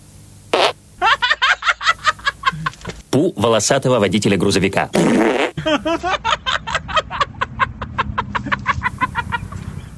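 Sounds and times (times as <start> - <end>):
girl's fart with sputtering buzzy pops: 0.5 - 0.8, 5.0 - 5.6
laughter: 1.0 - 2.9, 5.6 - 9.7
speech: 3.2 - 6.4.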